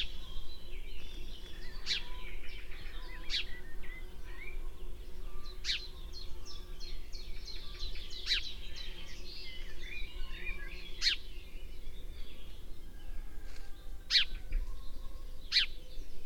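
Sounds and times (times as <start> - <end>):
house sparrow Passer domesticus chirps: 0.0 - 16.2.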